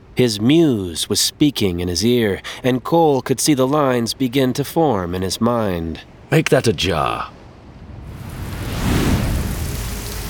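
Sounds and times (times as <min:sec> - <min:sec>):
speech: 0:00.2 - 0:07.4
low rumble like thunder: 0:06.6 - 0:10.2
heavy rain pouring onto a rocky shore: 0:08.0 - 0:10.2.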